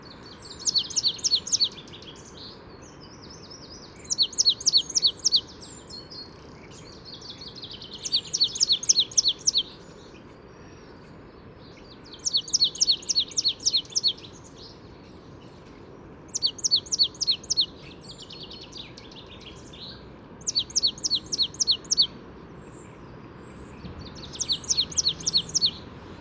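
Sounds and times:
resident songbirds singing in the morning: 0:00.0 - 0:26.2.

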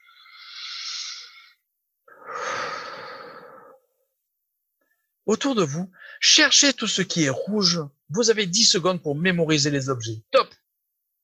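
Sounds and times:
long audible sighing exhale: 0:00.0 - 0:03.8
slow deep breath drawn in through the mouth: 0:00.0 - 0:04.0
speech: 0:05.3 - 0:10.4.

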